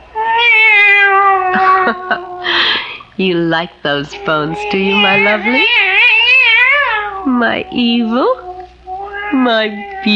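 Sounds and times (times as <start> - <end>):
female cat meowing: 0.1 - 2.4, 4.2 - 7.5, 8.4 - 10.1
speech: 3.2 - 6.0, 7.4 - 8.4, 9.3 - 10.1.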